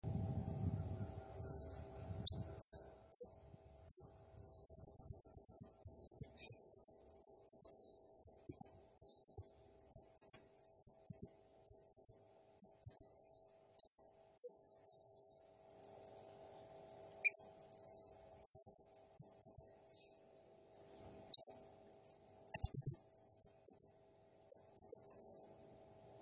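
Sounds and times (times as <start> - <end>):
brief low rumble: 0.0 - 2.6
blue-crowned hanging parrot chirping: 1.4 - 3.3, 3.9 - 13.0, 13.8 - 14.6, 17.2 - 17.5, 18.5 - 19.6, 21.4 - 21.6, 22.5 - 23.8, 24.8 - 25.4.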